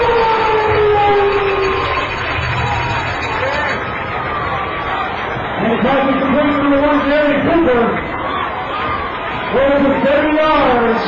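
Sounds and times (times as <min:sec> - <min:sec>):
air raid sirens wailing at a football stadium: 0:00.0 - 0:02.8
loud football stadium crowd: 0:00.0 - 0:11.0
speech: 0:07.3 - 0:08.1, 0:09.6 - 0:11.0.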